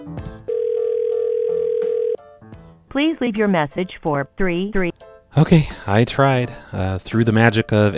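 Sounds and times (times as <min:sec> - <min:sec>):
ringback tone from an outgoing phone call: 0:00.5 - 0:02.2
speech: 0:02.9 - 0:07.9.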